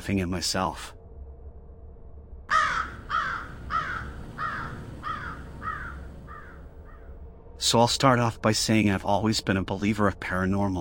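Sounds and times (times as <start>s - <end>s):
speech: 0.0s - 1.0s, 7.6s - 10.7s
crow cawing harsh and raspy: 2.5s - 7.2s.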